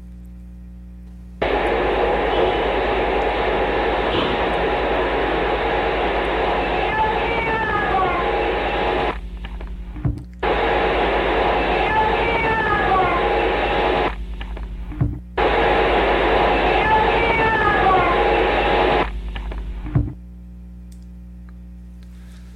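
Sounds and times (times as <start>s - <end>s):
faint warbling voice-like wails in paranormal EVP recording: 1.4s - 9.2s, 10.8s - 14.1s, 16.3s - 19.0s
hissy static-filled recording: 1.4s - 20.2s.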